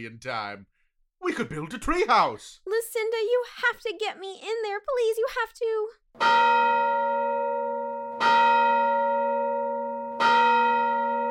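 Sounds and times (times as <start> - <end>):
speech: 0.0 - 6.8
school lunch bell ringing: 6.2 - 11.3.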